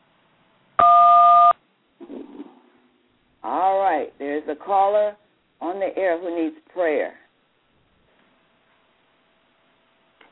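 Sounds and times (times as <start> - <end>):
telephone keypad tone for the digit one: 0.8 - 1.6
speech: 3.4 - 7.2.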